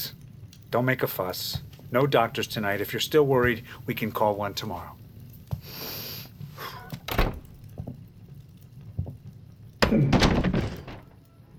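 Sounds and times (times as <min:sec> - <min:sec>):
speech: 0:00.0 - 0:05.0
solid thunk of a door being opened: 0:07.0 - 0:07.5, 0:09.8 - 0:11.2
loud sustained rattling scrape of a door being opened: 0:10.2 - 0:11.2.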